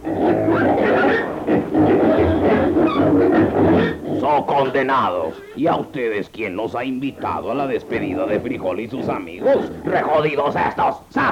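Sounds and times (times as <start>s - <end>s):
several pigs grunting and squealing: 0.0s - 11.2s
speech: 4.7s - 11.2s.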